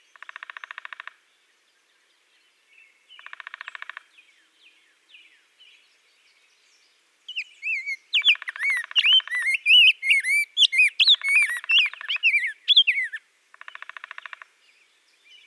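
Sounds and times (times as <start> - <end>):
rose-breasted grosbeak singing Pheucticus ludovicianus: 5.7 - 15.4.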